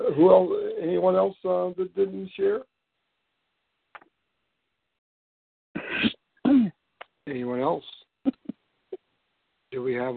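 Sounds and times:
speech: 0.2s - 2.7s, 7.3s - 8.4s, 9.7s - 10.1s
single sneeze: 5.8s - 6.7s.

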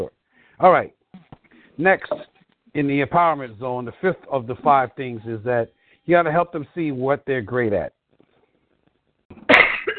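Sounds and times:
speech: 0.0s - 1.0s, 1.8s - 8.0s
soft breath: 0.2s - 0.6s
loud rough throaty cough: 9.4s - 9.9s.

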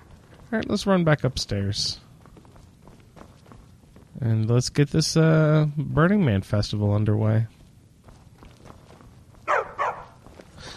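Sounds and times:
speech: 0.5s - 2.0s, 4.2s - 7.6s
dog barking with sharp yaps: 9.5s - 10.2s.

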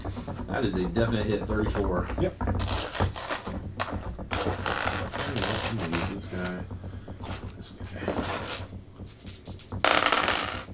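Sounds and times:
low hum: 0.0s - 10.7s
speech: 0.5s - 3.1s
dice clattering across a hard tabletop: 2.6s - 6.0s, 8.1s - 10.7s.

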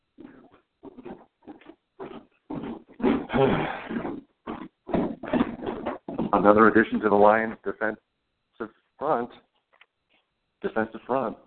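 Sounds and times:
pig oinking, grunting and snorting: 0.2s - 7.6s
speech: 3.4s - 3.8s, 6.3s - 8.1s, 9.1s - 9.4s, 10.8s - 11.4s.

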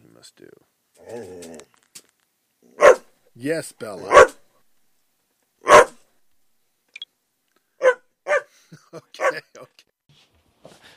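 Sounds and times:
speech: 0.2s - 1.8s, 3.4s - 4.4s
dog barking and yipping: 2.8s - 3.1s, 4.0s - 4.4s, 5.6s - 6.0s, 7.8s - 8.5s, 9.2s - 9.4s.

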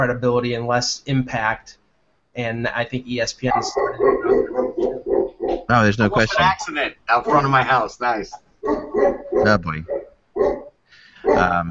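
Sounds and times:
speech: 0.0s - 1.8s, 2.4s - 4.2s, 5.7s - 8.4s, 9.0s - 10.0s, 11.3s - 11.6s
dog barking: 3.5s - 5.7s, 8.6s - 11.6s
dog whining: 3.6s - 5.7s, 8.6s - 10.7s.

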